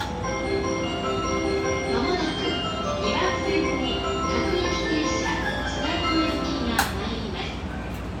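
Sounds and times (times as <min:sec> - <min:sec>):
train: 0:00.0 - 0:08.1.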